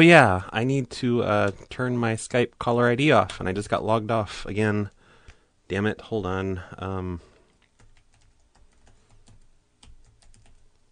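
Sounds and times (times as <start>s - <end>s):
speech: 0.0s - 5.0s, 5.7s - 7.3s
password being typed on a computer keyboard: 7.5s - 10.7s.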